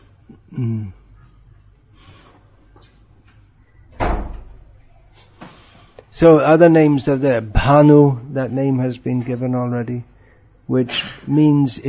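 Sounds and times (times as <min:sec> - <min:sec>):
speech: 0:00.5 - 0:01.0, 0:06.2 - 0:10.1, 0:10.7 - 0:11.8
door shutting with a thud: 0:03.9 - 0:04.6
door squeaking as it swings: 0:03.9 - 0:04.7.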